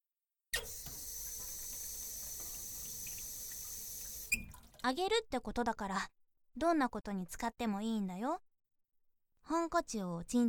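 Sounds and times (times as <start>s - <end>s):
water running from a tap while something is washed: 0.6s - 4.9s
speech: 4.8s - 8.5s, 9.4s - 10.4s.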